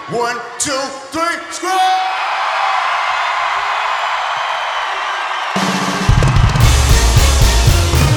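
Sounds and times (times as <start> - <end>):
speech: 0.1 - 2.2
crowd screaming at the top of their lungs: 1.6 - 8.1.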